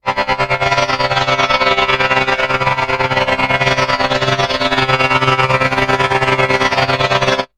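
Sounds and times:
sampler granular synthesis sound: 0.0 - 7.5.

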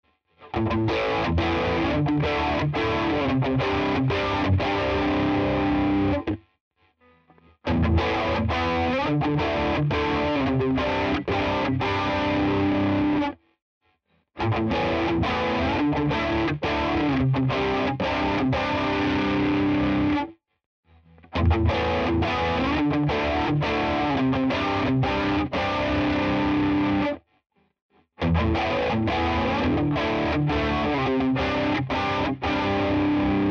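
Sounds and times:
flanger crunch guitar tone: 0.5 - 6.4, 7.7 - 13.4, 14.4 - 20.3, 21.3 - 27.2, 28.2 - 33.4.

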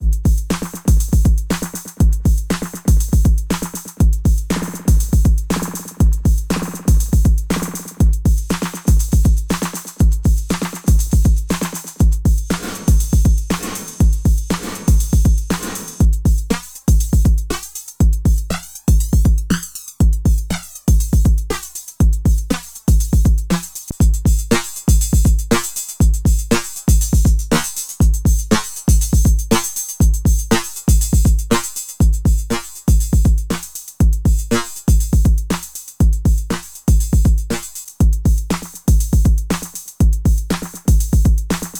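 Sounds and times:
drum machine simple beat with delay types: 0.0 - 41.7.

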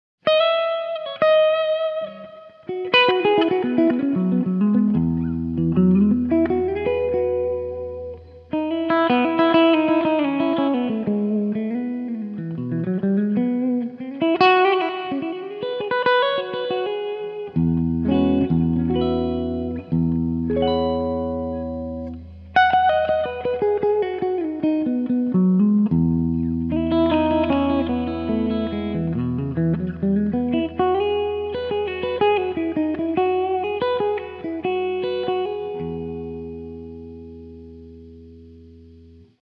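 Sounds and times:
electric guitar with both pickups in parallel and much reverb: 0.2 - 39.4.

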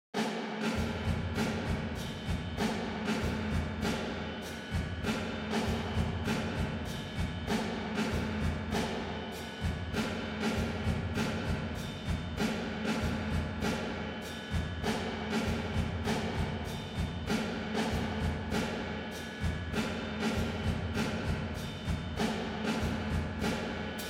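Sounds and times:
vintage drum kit plate: 0.2 - 24.0.

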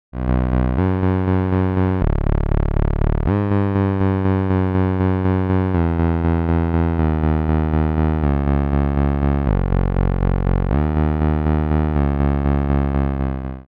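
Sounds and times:
noise input: 0.2 - 13.6.

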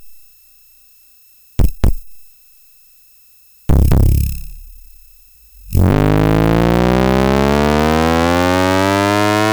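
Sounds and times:
pitched synth drum: 1.6 - 2.1, 3.7 - 9.3.

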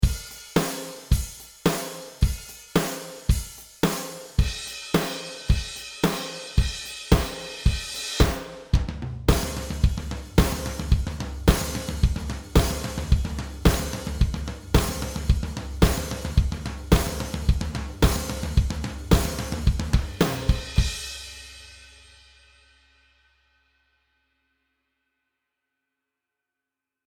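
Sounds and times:
unprocessed drum subgroup playing: 0.0 - 21.5.

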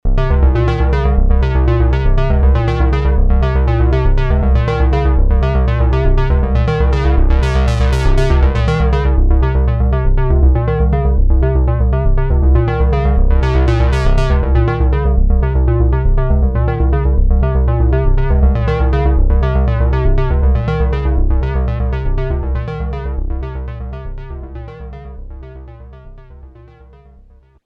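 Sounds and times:
Roland JX03 square wave synth sequence: 0.1 - 27.2.

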